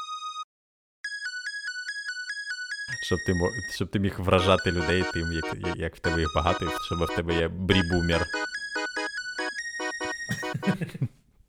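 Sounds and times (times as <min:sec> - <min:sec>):
synthetic polyphonic mobile phone ringtone melody: 0:00.0 - 0:00.4, 0:01.0 - 0:10.9
speech: 0:02.9 - 0:08.4
laughter: 0:10.3 - 0:11.2.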